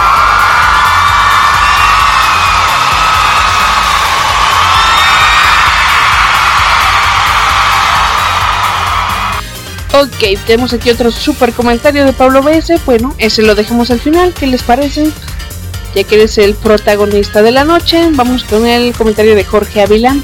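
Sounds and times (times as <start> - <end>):
shrill whistles from a crowd: 0.0 - 6.0
crowd cheering in an ovation: 0.0 - 9.4
speech: 10.0 - 15.3, 15.9 - 20.2.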